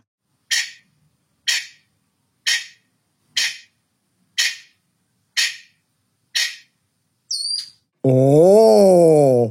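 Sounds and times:
pheasant calling: 0.5s - 7.9s
speech: 8.0s - 8.6s.

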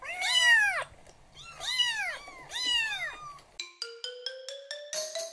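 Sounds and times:
cat meowing: 0.0s - 3.6s.

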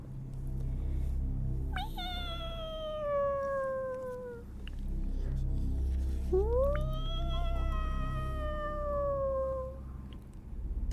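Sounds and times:
steady low rumble: 0.0s - 10.9s
cat yowling: 1.8s - 4.5s, 6.3s - 9.9s.

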